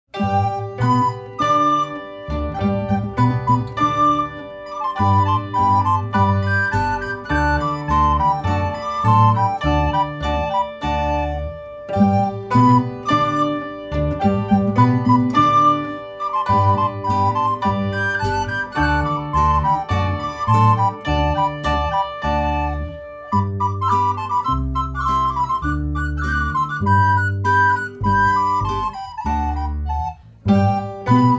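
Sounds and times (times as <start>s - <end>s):
elevator music: 0.1s - 31.3s.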